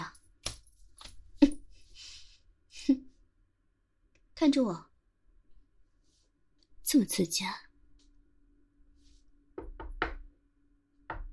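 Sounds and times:
speech: 0:04.4 - 0:04.9, 0:06.9 - 0:07.6
knocking on a door: 0:09.6 - 0:10.3, 0:11.1 - 0:11.3.

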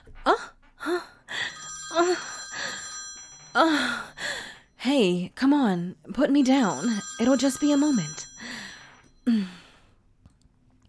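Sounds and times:
phone ringing with a steady electronic tone: 0:01.4 - 0:04.5, 0:06.4 - 0:09.2
speech: 0:05.0 - 0:08.2, 0:09.3 - 0:09.6.

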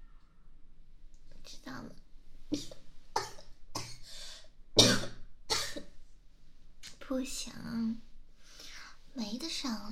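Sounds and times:
harsh coughing: 0:04.8 - 0:05.9
speech: 0:07.1 - 0:08.1, 0:09.2 - 0:09.9.

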